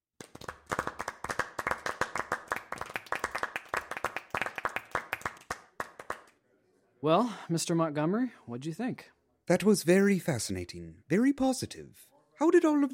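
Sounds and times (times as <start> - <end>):
group applause: 0.2 - 6.4
speech: 7.0 - 12.9.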